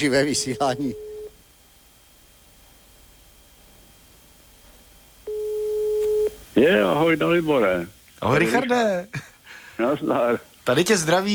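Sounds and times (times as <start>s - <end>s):
speech: 0.0s - 1.1s, 6.6s - 11.3s
steady telephone line tone on an unanswered call: 0.0s - 1.4s, 5.2s - 7.8s.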